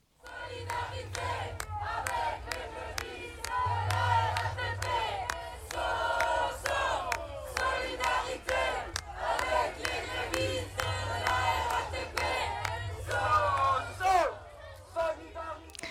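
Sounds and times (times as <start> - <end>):
large protest crowd chanting and shouting: 0.2 - 15.8.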